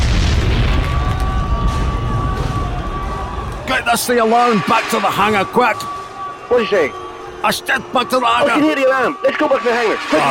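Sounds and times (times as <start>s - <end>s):
bomb explosion rumbling roar: 0.0s - 3.7s
speech: 3.9s - 10.2s.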